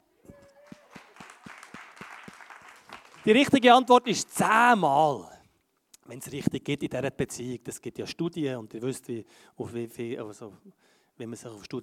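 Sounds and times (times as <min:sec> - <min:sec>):
small group applauding: 0:00.2 - 0:04.5
speech: 0:03.2 - 0:05.3, 0:06.1 - 0:11.8.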